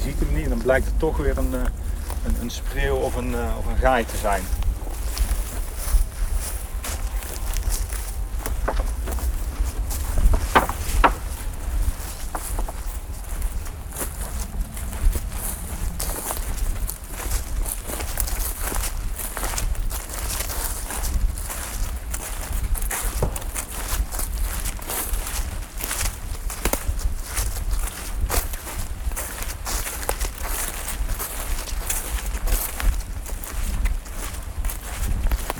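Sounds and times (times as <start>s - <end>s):
constant outdoor hiss: 0.0s - 21.4s
footsteps crunching over leafy uneven ground through a grove of black alder: 0.0s - 35.5s
speech: 0.1s - 4.6s.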